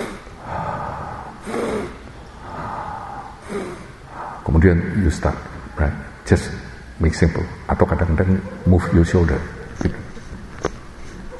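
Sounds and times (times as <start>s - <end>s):
slow deep breathing with long airy inhales and exhales: 0.0s - 4.6s
speech: 4.5s - 10.0s.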